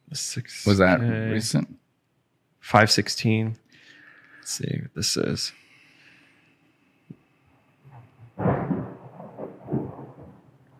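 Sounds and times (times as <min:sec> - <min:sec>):
speech: 0:00.2 - 0:01.8, 0:02.6 - 0:03.6, 0:04.5 - 0:05.6
rolling rumble of thunder from a storm: 0:08.3 - 0:10.7.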